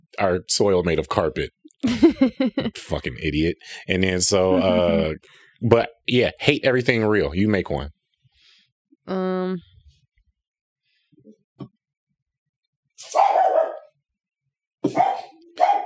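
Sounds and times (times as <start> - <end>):
laughter: 0.2 - 7.8
speech: 0.2 - 8.0, 9.1 - 9.7
dog barking: 13.0 - 13.9, 14.9 - 15.8.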